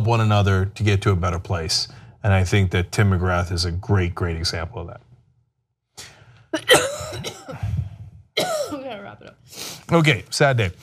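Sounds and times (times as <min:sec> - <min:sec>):
speech: 0:00.0 - 0:05.1, 0:06.0 - 0:07.8, 0:08.4 - 0:10.8
harsh coughing: 0:06.6 - 0:08.9.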